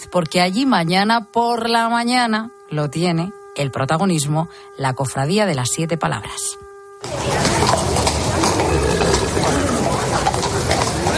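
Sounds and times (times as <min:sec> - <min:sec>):
speech: 0:00.1 - 0:07.8
horse hooves clip-clopping on pavement in a Holy Week procession in Valladolid: 0:07.0 - 0:11.1
murmuring voices of a busy outdoor crowd: 0:07.0 - 0:11.1
street noise: 0:07.0 - 0:11.1.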